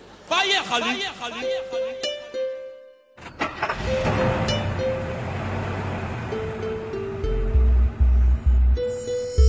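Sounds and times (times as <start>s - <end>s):
speech: 0.4s - 2.1s
white minibus engine rumbling and revving as it pulls away: 3.2s - 9.4s.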